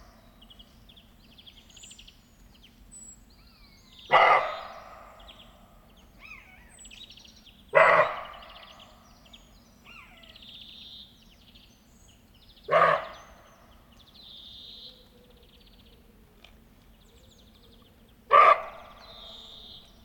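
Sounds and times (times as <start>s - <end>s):
birds singing and chirping: 0.0s - 20.0s
roe deer giving rough gruff barks: 4.1s - 5.2s, 7.8s - 8.7s, 12.7s - 13.3s, 18.3s - 19.8s.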